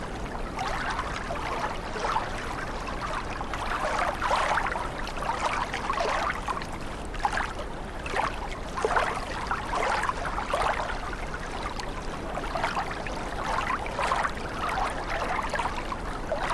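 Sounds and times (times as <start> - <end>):
water splashing: 0.0 - 16.5.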